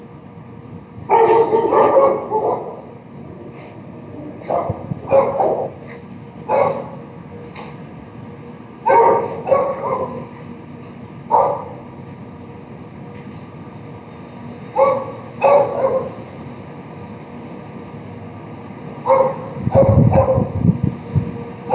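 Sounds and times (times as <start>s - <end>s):
dog barking: 1.1s - 2.8s, 4.4s - 5.8s, 6.5s - 7.0s, 8.8s - 10.3s, 11.3s - 11.8s, 14.8s - 16.2s, 19.0s - 20.6s.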